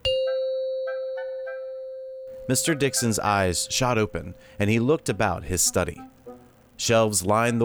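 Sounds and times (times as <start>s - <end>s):
doorbell chime in a home: 0.0s - 4.5s
speech: 2.5s - 6.2s, 6.8s - 7.6s.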